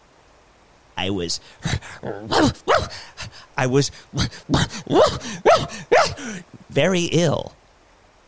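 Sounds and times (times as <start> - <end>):
speech: 1.0 - 7.6
dog barking and growling: 1.5 - 6.7.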